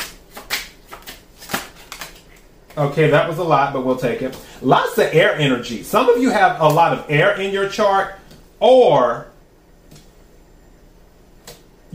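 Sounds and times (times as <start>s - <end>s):
playing cards being shuffled and dealt onto a deck: 0.0s - 2.4s
speech: 2.8s - 9.3s.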